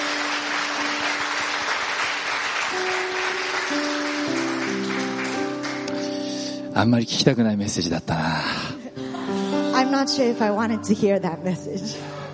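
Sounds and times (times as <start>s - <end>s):
audience applauding a pastor: 0.0s - 6.2s
soft sustained keyboard chords: 0.0s - 12.3s
speech: 6.8s - 8.6s, 9.9s - 12.1s.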